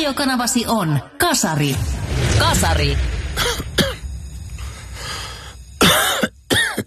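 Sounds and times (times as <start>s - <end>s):
speech: 0.1s - 3.5s
harsh chesty coughing: 3.4s - 4.1s, 5.8s - 6.8s
raspy throat clearing: 3.4s - 4.1s, 5.8s - 6.8s.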